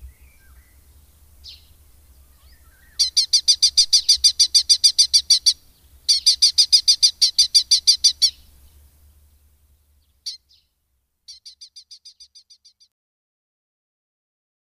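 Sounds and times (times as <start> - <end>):
red-footed falcon calling: 1.4 - 8.5, 11.3 - 12.9.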